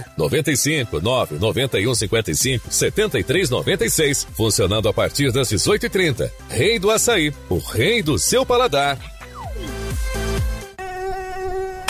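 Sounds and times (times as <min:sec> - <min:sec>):
speech: 0:00.1 - 0:09.2
dengue mosquito buzzing: 0:09.2 - 0:11.8.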